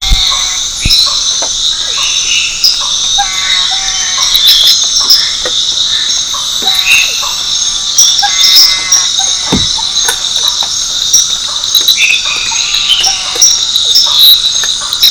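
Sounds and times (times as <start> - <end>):
Hamptophryne boliviana frog calling: 0.0 - 15.0.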